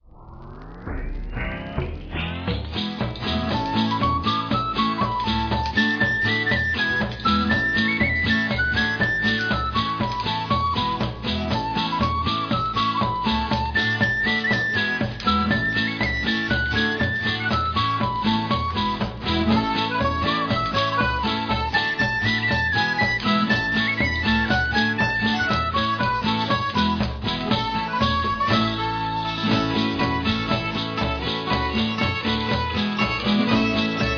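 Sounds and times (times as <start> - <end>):
gramophone music: 0.0 - 34.1.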